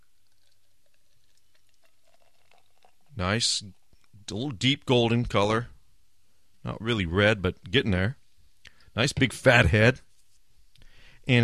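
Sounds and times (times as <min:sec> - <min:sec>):
Imperial IPA fizzing as poured from a can into a glass: 0:00.0 - 0:04.0
speech: 0:03.2 - 0:05.7, 0:06.6 - 0:08.2, 0:09.0 - 0:10.1, 0:11.2 - 0:11.4.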